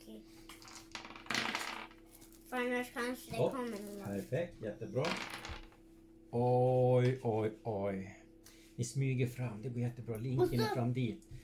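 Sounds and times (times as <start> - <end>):
dice rolled during a tabletop role-playing game: 0.5 - 2.4, 5.0 - 5.8
speech: 2.5 - 5.4, 6.3 - 8.2, 8.8 - 11.4.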